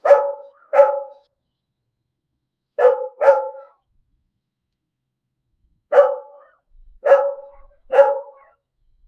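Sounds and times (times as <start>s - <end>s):
puppy barking: 0.0s - 1.3s, 2.8s - 3.8s, 5.9s - 8.6s.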